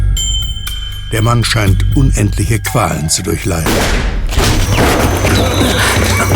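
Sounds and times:
speech: 1.1s - 6.3s
loud gunshot: 3.7s - 5.4s.

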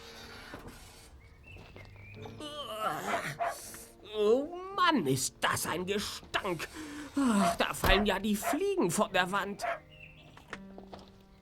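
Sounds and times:
dog whimpering with thin rising whines: 2.4s - 3.6s, 9.6s - 9.8s
dog barking: 3.0s - 3.6s, 7.4s - 7.6s, 8.4s - 8.7s, 9.6s - 9.9s
speech: 4.9s - 9.8s.

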